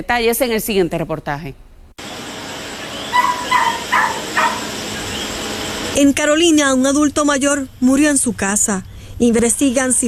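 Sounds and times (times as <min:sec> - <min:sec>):
speech: 0:00.0 - 0:01.7, 0:06.0 - 0:10.0
steady hiss: 0:00.0 - 0:10.0
short high-pitched dog barks or yips: 0:02.7 - 0:06.0.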